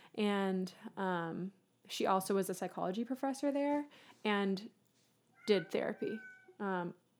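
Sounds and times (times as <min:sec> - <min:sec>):
speech: 0:00.2 - 0:04.8, 0:05.5 - 0:07.0
cat meowing in the background: 0:05.4 - 0:06.6.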